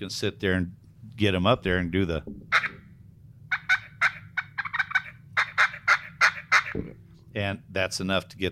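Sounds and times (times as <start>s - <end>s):
speech: 0.0s - 2.6s, 6.8s - 8.4s
low rumble: 0.0s - 8.4s
hand-held turkey call imitating a gobble: 2.5s - 2.9s, 3.5s - 7.0s.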